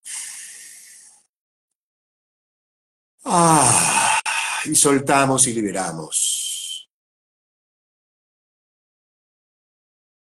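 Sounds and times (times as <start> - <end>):
deep airy inhalation: 0.0 - 1.3, 3.3 - 4.7
speech: 3.3 - 3.9, 4.6 - 6.4.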